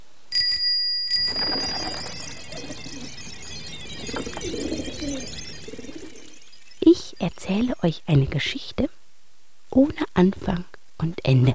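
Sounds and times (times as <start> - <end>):
bicycle bell ringing: 0.3 - 5.3
speech: 7.2 - 9.0, 9.8 - 11.5.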